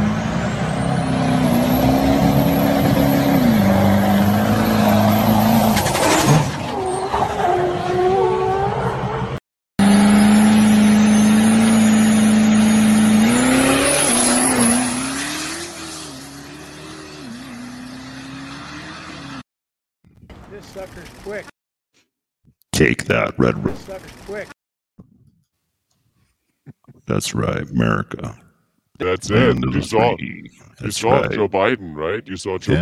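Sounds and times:
truck engine revving hard: 0:00.0 - 0:19.4
speech: 0:22.8 - 0:24.5, 0:27.1 - 0:28.4, 0:29.0 - 0:32.8.

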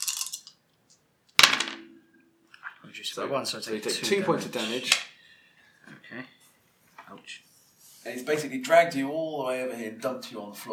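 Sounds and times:
dice rolling on a table for an armor roll in a game: 0:00.0 - 0:01.9
speech: 0:03.0 - 0:05.1, 0:08.2 - 0:10.7.

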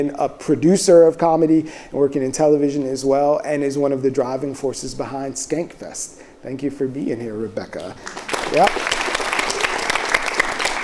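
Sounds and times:
speech: 0:00.0 - 0:08.7
room full of people clapping politely: 0:08.0 - 0:10.8.

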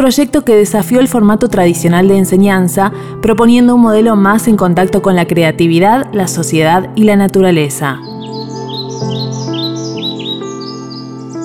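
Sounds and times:
speech: 0:00.0 - 0:08.4
bird singing in a tree: 0:04.2 - 0:11.4.

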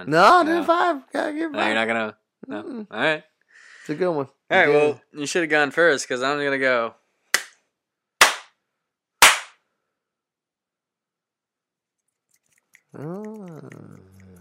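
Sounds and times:
speech: 0:00.0 - 0:03.3, 0:03.9 - 0:07.0, 0:13.0 - 0:13.9
sharp hand slaps: 0:07.3 - 0:07.6, 0:08.2 - 0:08.6, 0:09.2 - 0:09.6.

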